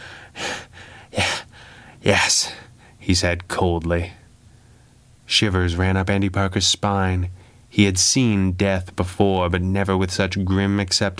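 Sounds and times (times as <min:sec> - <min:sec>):
ragged labored gasps of a dying gangster lying down: 0:00.0 - 0:02.0
speech: 0:02.0 - 0:04.2, 0:05.3 - 0:11.1.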